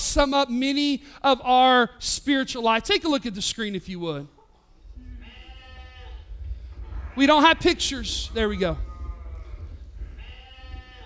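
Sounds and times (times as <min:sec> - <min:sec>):
speech: 0:00.1 - 0:04.4, 0:07.2 - 0:08.9
low steady rumble: 0:03.4 - 0:11.0
sheep bleating: 0:04.4 - 0:11.0.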